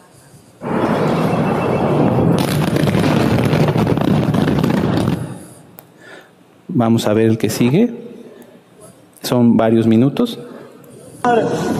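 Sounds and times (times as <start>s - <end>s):
large explosion: 0.6s - 5.4s
crackling debris: 0.6s - 5.5s
speech: 6.8s - 8.1s, 9.3s - 10.5s, 11.2s - 11.7s.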